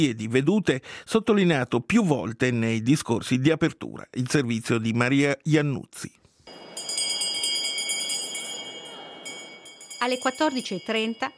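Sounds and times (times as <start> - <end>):
speech: 0.0 - 6.2, 10.0 - 11.3
small handbell rung to open a legislature session in the National Council chamber: 6.5 - 11.3.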